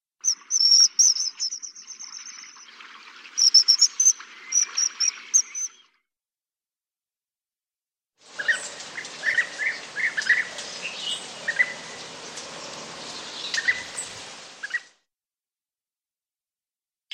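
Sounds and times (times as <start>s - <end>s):
hoopoe calling: 8.3s - 14.8s.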